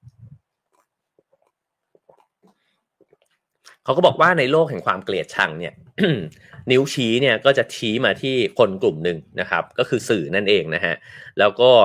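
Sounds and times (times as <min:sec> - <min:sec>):
person sipping water: 0:00.0 - 0:03.8
wet mouth clicks: 0:00.0 - 0:03.8
speech: 0:03.9 - 0:11.8.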